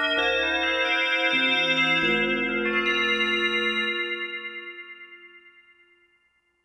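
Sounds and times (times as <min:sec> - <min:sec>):
ring chimes factory patch on a Roland JD-990 synthesizer: 0:00.2 - 0:05.5.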